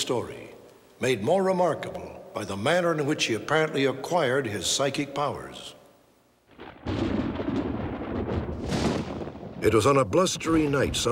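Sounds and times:
speech: 0.1s - 0.4s, 1.0s - 5.8s, 9.6s - 11.1s
thunder rumbling during a severe thunderstorm: 6.5s - 11.1s.

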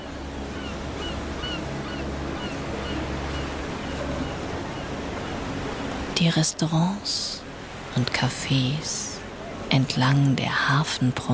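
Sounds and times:
seagulls calling over the sea: 0.0s - 5.9s
steady wash of sea surf: 0.0s - 10.2s
wind over the sea: 0.0s - 11.3s
speech: 6.2s - 7.4s, 8.0s - 9.1s, 9.7s - 11.3s.

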